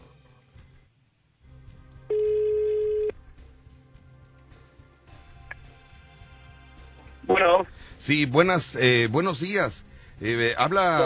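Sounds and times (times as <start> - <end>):
ringback tone on an outgoing phone call: 2.1 - 3.2
speech: 8.0 - 11.0.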